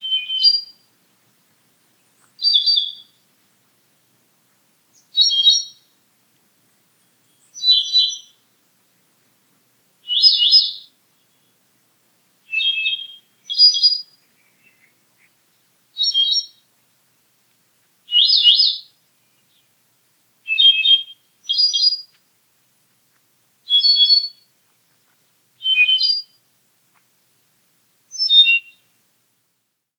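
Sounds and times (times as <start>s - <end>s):
Myadestes ralloides: 0.0s - 0.9s, 1.8s - 3.4s, 4.4s - 6.0s, 6.7s - 8.4s, 10.0s - 11.6s, 12.4s - 16.8s, 18.0s - 19.8s, 20.4s - 22.2s, 23.6s - 27.1s, 28.1s - 29.0s.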